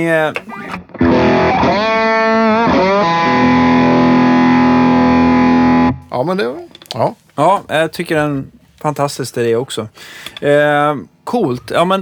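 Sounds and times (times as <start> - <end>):
speech: 0.0 - 0.8, 1.7 - 2.3, 6.1 - 12.0
heavily distorted slide guitar with gold foil pickups: 0.0 - 6.0.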